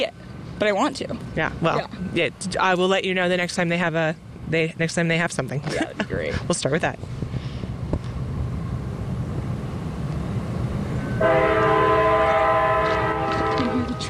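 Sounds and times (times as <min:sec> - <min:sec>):
speech: 0:00.0 - 0:07.2
train rumbling outdoors with wind-buffeted roar: 0:00.0 - 0:14.0
train horn blasting a sustained multi-tone chord: 0:11.1 - 0:14.0.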